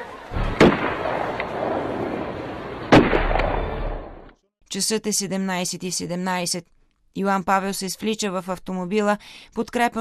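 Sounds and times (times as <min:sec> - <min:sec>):
murmur of a large outdoor crowd: 0:00.0 - 0:02.8
gunshots: 0:00.4 - 0:04.2
speech: 0:04.7 - 0:09.9.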